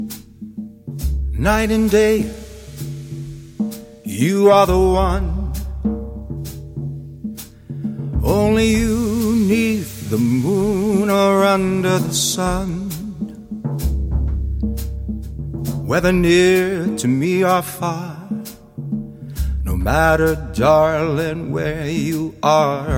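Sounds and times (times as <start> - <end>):
drum: 0.0 - 22.9
person singing: 1.4 - 2.9, 4.1 - 5.8, 8.2 - 13.3, 15.9 - 18.6, 19.6 - 22.9.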